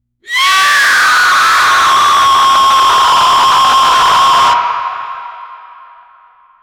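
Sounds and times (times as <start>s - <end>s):
dark banshee scream: 0.3s - 6.6s.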